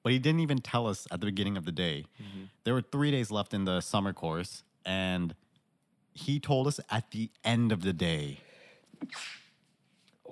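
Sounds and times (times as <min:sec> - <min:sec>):
speech: 0:00.0 - 0:05.4, 0:06.2 - 0:09.4
single sharp sneeze: 0:09.0 - 0:09.5.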